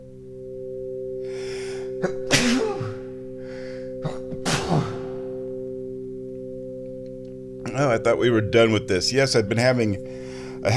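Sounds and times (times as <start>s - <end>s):
speech: 2.0s - 2.4s, 7.8s - 10.7s
person sneezing: 2.0s - 3.2s, 4.0s - 5.4s.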